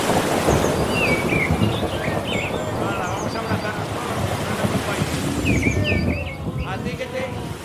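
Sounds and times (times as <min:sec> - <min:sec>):
low rumble of thunder: 0:00.0 - 0:07.6
steady rain-like hiss: 0:00.0 - 0:07.6
thin bird chirps: 0:00.5 - 0:03.9, 0:05.4 - 0:06.8.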